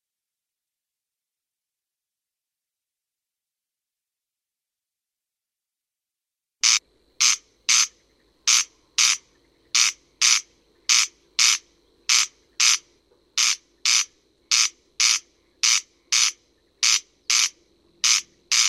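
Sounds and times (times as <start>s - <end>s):
corn crake rasping call in France: 6.6s - 18.6s
quiet low drone: 6.8s - 18.6s.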